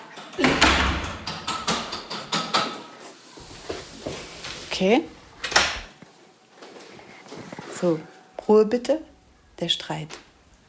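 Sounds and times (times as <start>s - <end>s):
rattling clicks and knocks of door settling into the frame: 0.1s - 2.8s
door pushed shut with a dull thud: 0.4s - 2.0s
speech: 4.8s - 5.2s, 7.8s - 10.2s.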